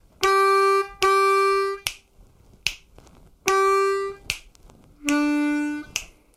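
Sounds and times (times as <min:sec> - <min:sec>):
12 bar blues harmonica lick: 0:00.2 - 0:01.9, 0:03.4 - 0:04.4, 0:05.0 - 0:06.1.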